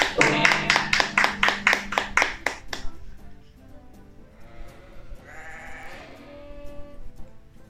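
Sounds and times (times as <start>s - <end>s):
short tonal jingle: 0.2s - 3.0s
loud wavering goat bleat: 4.5s - 7.0s.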